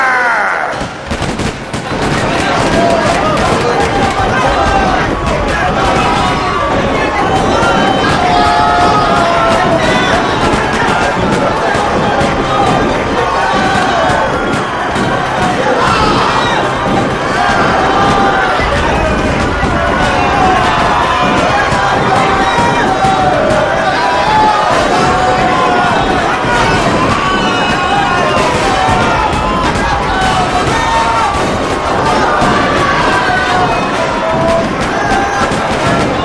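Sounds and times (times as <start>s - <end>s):
panicked crowd of unarmed people screaming at a peaceful protest meeting: 0.0s - 36.2s
panicked crowd shouting while fleeing in a stampede: 0.0s - 36.2s
sharp gunfire from soldiers: 0.6s - 36.2s.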